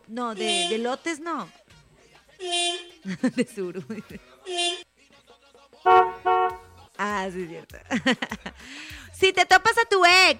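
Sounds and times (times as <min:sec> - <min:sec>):
speech: 0:00.1 - 0:01.6, 0:02.4 - 0:04.9, 0:05.8 - 0:06.3, 0:07.0 - 0:10.3
car horn honking: 0:00.4 - 0:00.9, 0:02.4 - 0:03.0, 0:05.9 - 0:06.8
laughter: 0:03.0 - 0:04.4, 0:07.8 - 0:08.8.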